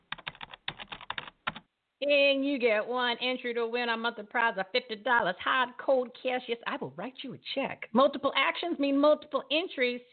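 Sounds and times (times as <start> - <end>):
computer keyboard typing: 0.0 - 1.6
speech: 2.0 - 10.1.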